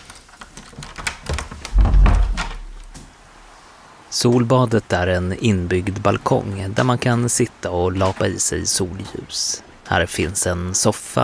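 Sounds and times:
dull thud of a door opening: 1.2s - 3.1s
speech: 4.2s - 11.2s.

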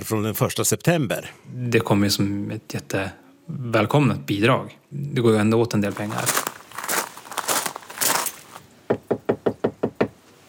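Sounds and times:
speech: 0.1s - 6.4s
rustling crinkling noise: 5.7s - 8.7s
firm knocks on a door: 8.9s - 10.2s.

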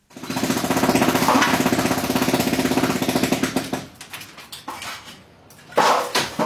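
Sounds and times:
jackhammer demolishing a house: 0.0s - 4.0s.

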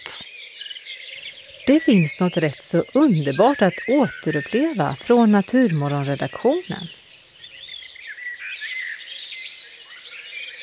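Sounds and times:
dense nighttime chorus of birds chirping and trilling: 0.0s - 10.6s
faint low background: 1.6s - 7.0s
speech: 1.6s - 7.0s.

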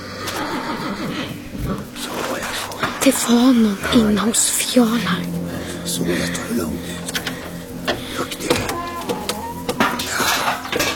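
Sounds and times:
horse in a stable whinnying uneasily: 0.0s - 3.0s, 6.4s - 10.9s
low rumble: 0.0s - 10.9s
speech: 3.0s - 7.2s.

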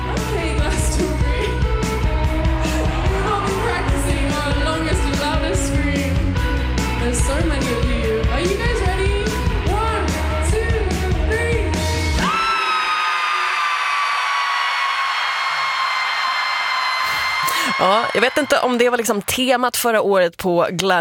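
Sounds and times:
pounding concert music: 0.0s - 12.4s
concert crowd and singer screaming together: 0.6s - 5.8s, 11.8s - 18.8s
speech: 17.8s - 20.9s.

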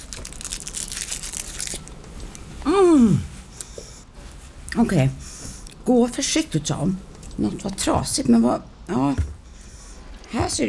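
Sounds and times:
chocolate wrapper crinkling and tearing: 0.0s - 2.1s
speech: 3.0s - 3.3s, 4.8s - 5.2s, 5.9s - 9.4s, 10.4s - 10.6s.

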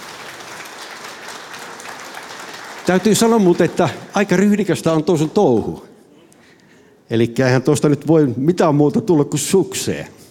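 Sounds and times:
audience applause as a singer walks onto the stage: 0.0s - 5.6s
speech: 2.9s - 5.9s, 7.1s - 10.2s.

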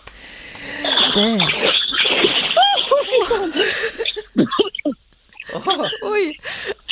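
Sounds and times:
water sloshing: 0.7s - 4.8s
speech: 1.2s - 1.9s, 5.6s - 6.7s
person jumping off a low jetty into cold water: 1.6s - 3.2s.

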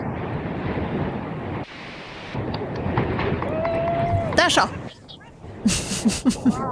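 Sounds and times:
strong wind roaring across a rocky seashore in the archipelago: 0.0s - 6.6s
swimmer letting out joyful whooping shouts: 3.3s - 5.3s
speech: 4.5s - 4.8s, 5.6s - 6.6s
laughter: 4.7s - 6.6s.

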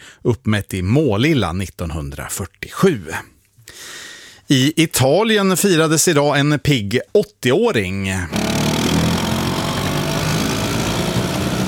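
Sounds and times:
speech: 0.2s - 8.6s
small Vespa scooter engine idling: 8.3s - 11.6s.

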